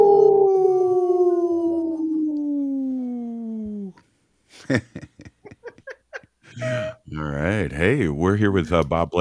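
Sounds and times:
people howling in wolf imitation: 0.0s - 4.0s
speech: 4.6s - 5.1s, 6.6s - 9.1s
people laughing: 4.6s - 6.9s.

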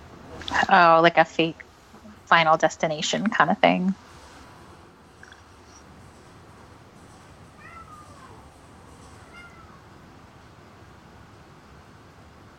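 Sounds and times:
steady hiss: 0.0s - 12.5s
speech: 0.5s - 1.6s, 2.3s - 4.1s
cat meowing: 7.6s - 8.5s, 9.2s - 10.0s.

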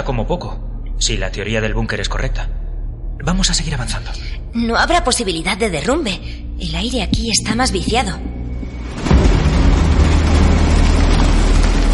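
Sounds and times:
speech: 0.0s - 2.6s, 3.2s - 9.0s
train passing in tunnel at night: 8.0s - 11.9s.

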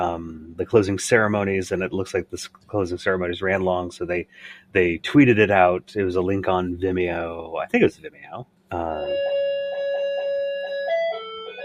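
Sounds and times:
speech: 0.0s - 9.3s
electronic doorbell playing a festive Christmas chime: 9.1s - 11.6s.

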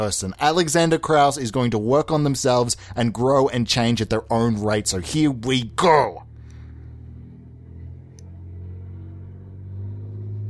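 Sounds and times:
speech: 0.0s - 6.3s
car engine roaring past outside: 4.7s - 10.4s.

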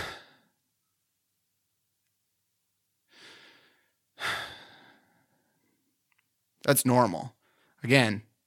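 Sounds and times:
slow deliberate audible breaths: 3.1s - 5.9s, 7.4s - 7.8s
speech: 6.7s - 8.3s.

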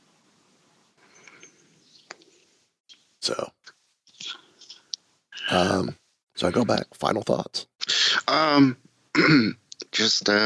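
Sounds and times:
speech: 3.2s - 3.6s, 5.5s - 7.7s, 8.3s - 10.4s
person clearing throat: 9.2s - 9.6s
person coughing: 9.2s - 9.6s.

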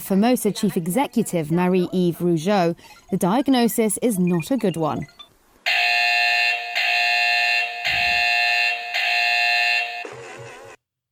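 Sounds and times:
speech: 0.1s - 5.2s
toy's loud electronic alarm buzzer: 5.7s - 10.7s.

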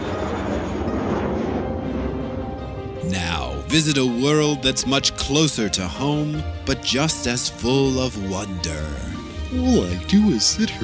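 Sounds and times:
airplane engine roaring as it flies past: 0.0s - 3.0s
speech: 3.2s - 10.8s.

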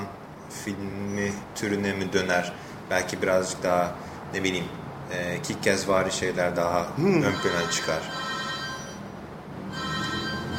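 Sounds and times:
speech: 0.6s - 8.4s
telephone ringing with a bright electronic tone: 7.3s - 9.1s, 9.7s - 10.5s.

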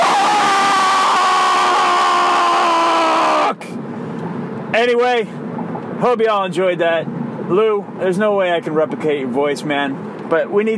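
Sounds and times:
two men screaming together: 0.0s - 3.6s
speech: 4.8s - 5.4s, 6.0s - 10.7s.

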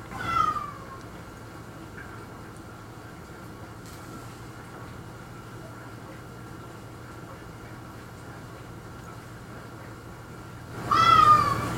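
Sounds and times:
cat meowing: 0.1s - 1.0s, 10.9s - 11.6s.

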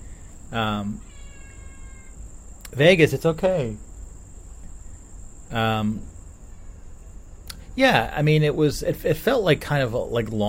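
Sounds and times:
faint steady high-pitched whine: 0.0s - 10.4s
speech: 0.5s - 1.1s, 2.7s - 3.9s, 5.5s - 6.1s, 7.8s - 10.4s
cat meowing: 0.9s - 2.2s.

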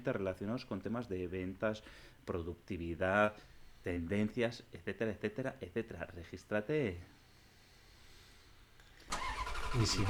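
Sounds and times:
speech: 0.0s - 7.2s, 9.7s - 10.0s
car engine cranking and starting: 9.1s - 10.0s.

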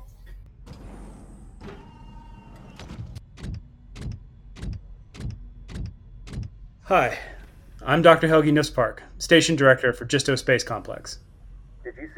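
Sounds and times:
heavy mechanical clunks: 0.0s - 8.4s
motorized main entrance door mechanism at a space complex whirring as it unlocks and slides open: 0.2s - 6.6s
speech: 6.9s - 11.3s, 12.0s - 12.1s.

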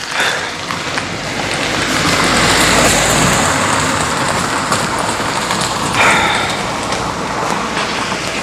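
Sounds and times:
car passing by outside: 0.0s - 8.4s
steady rain-like noise: 0.0s - 8.4s.

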